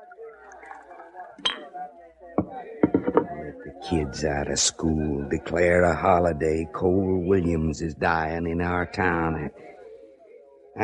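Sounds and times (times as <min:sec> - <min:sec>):
low murmur of a celebrating saloon crowd: 0:00.0 - 0:10.8
bottle clinking against glass while pouring rye: 0:01.4 - 0:01.7, 0:02.4 - 0:03.4
speech: 0:02.5 - 0:09.7.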